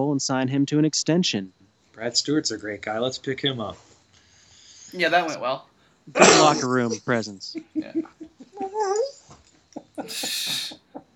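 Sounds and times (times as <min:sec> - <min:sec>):
speech: 0:00.0 - 0:03.9, 0:04.9 - 0:09.2, 0:10.0 - 0:10.8
laughter: 0:06.1 - 0:09.1, 0:09.8 - 0:11.1
puppy whining: 0:08.0 - 0:11.1.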